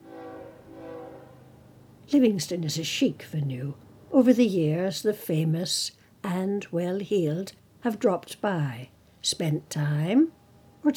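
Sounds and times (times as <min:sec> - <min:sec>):
train whistle blowing a sustained chord: 0:00.0 - 0:01.6
low rumble of the passing train: 0:00.0 - 0:04.3
speech: 0:02.1 - 0:10.9.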